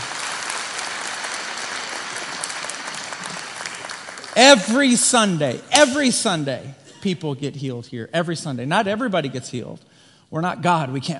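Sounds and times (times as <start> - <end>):
large gathering applauding: 0.0 - 5.0
speech: 4.4 - 11.1.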